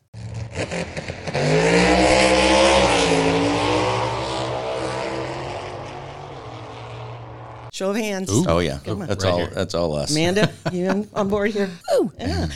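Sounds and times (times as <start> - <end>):
powerful car engine revving and roaring: 0.0 - 7.7
speech: 7.8 - 12.5
laughter: 8.3 - 12.5.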